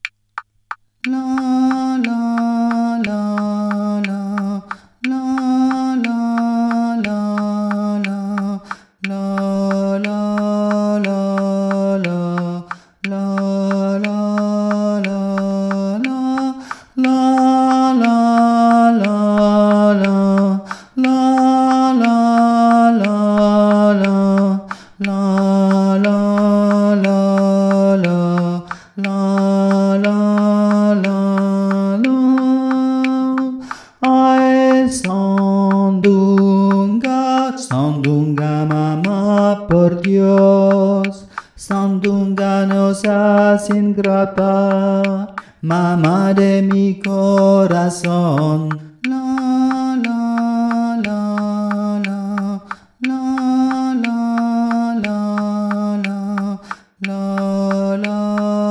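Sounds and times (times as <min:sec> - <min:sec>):
click: 0:00.0 - 0:58.6
man singing a traditional Mexican air in baritone from Tehuantepec: 0:01.0 - 0:58.6.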